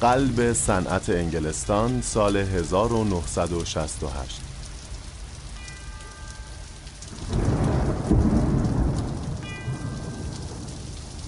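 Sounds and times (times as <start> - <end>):
speech: 0.0 - 4.5
heavy rain on a cloudy afternoon in Birmingham England: 0.0 - 11.2
deep roll of thunder rumbling: 7.1 - 11.2.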